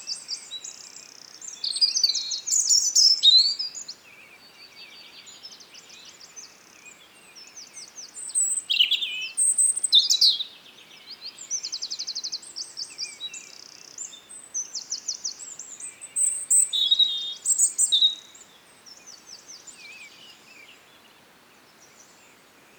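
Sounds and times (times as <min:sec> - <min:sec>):
Erithacus rubecula European robin singing: 0:00.0 - 0:21.1
faint background hiss: 0:00.0 - 0:22.7.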